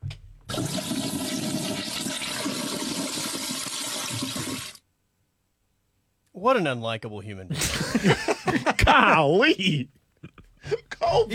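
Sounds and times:
toilet flushing: 0.0 - 4.8
speech: 6.4 - 11.3
laughter: 7.5 - 11.3.

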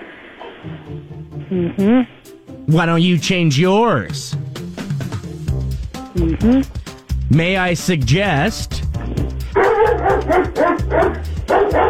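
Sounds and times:
speech: 0.6 - 4.4, 6.2 - 9.3, 10.0 - 11.8
dog barking: 9.5 - 11.8.

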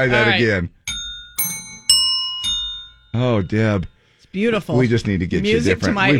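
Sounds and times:
speech: 0.0 - 0.8, 3.2 - 6.1
hand bells ringing: 0.9 - 3.9.

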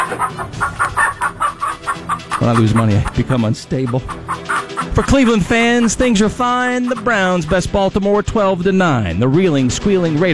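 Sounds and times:
chickens clucking: 0.0 - 7.8
speech: 0.1 - 10.3.

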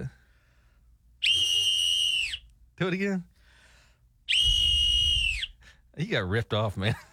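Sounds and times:
loud shrill whistle blast: 1.2 - 2.4, 4.3 - 5.6
speech: 2.8 - 3.3, 6.0 - 7.1.

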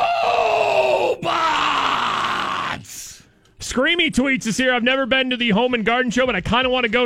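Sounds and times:
man screaming: 0.0 - 3.2
speech: 3.8 - 7.0.

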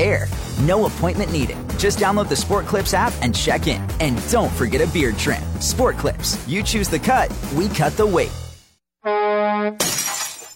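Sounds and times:
speech: 0.2 - 8.4
steady horn-like tone: 9.0 - 9.8
semi truck windshield glass shattering: 9.8 - 10.5.

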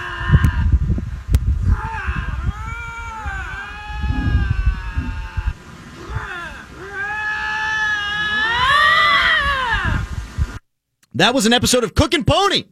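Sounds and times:
lynx caterwauling and yowling: 0.0 - 0.7, 1.6 - 10.1
speech: 11.2 - 12.7.

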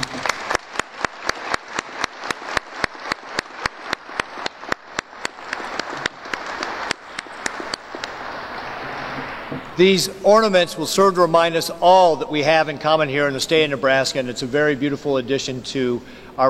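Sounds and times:
hands clapping: 0.0 - 9.4
crowd applauding: 0.0 - 9.8
speech: 9.8 - 16.4.

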